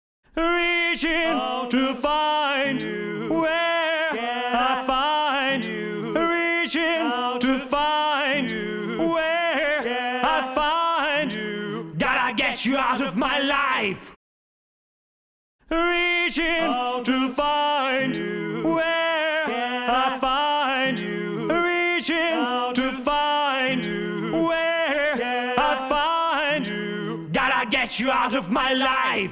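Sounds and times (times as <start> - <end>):
vocals before and after editing: 0.2 - 14.2, 15.6 - 29.3.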